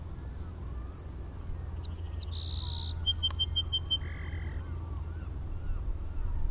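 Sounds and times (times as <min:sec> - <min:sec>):
song sparrow singing: 0:00.2 - 0:06.3.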